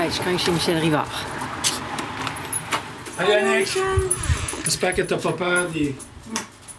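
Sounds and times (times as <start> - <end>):
speech: 0.1 - 1.4, 3.2 - 6.1
bells ringing: 2.3 - 6.7.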